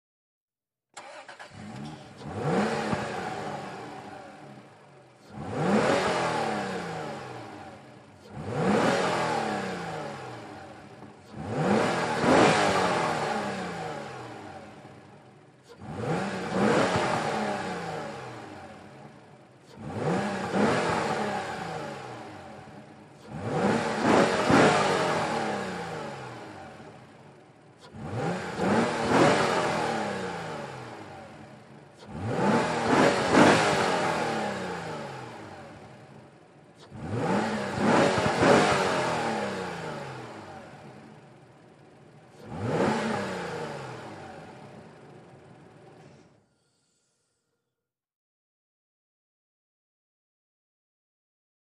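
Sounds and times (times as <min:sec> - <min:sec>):
SUV engine revving: 0:01.0 - 0:46.3.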